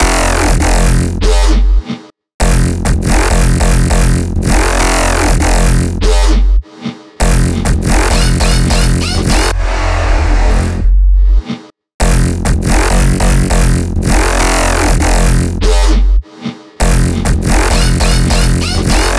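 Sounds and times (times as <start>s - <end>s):
glitchy FM bass: 0.0s - 1.8s, 2.4s - 6.6s, 7.2s - 11.4s, 12.0s - 16.2s, 16.8s - 19.1s.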